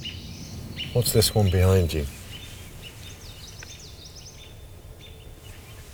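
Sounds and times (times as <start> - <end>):
American robin sharp high call notes: 0.0 - 2.3
speech: 1.0 - 2.2.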